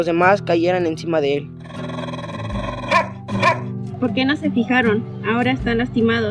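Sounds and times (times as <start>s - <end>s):
speech: 0.0s - 1.6s, 3.3s - 6.2s
dog growling: 1.6s - 3.7s.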